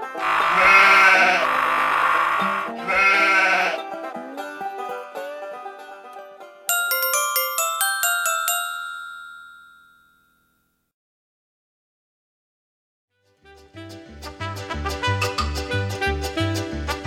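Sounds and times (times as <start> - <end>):
sheep bleating: 0.0 - 3.9
light plucked notes: 3.8 - 7.7, 14.6 - 17.0
bright chiming tones: 6.7 - 10.5.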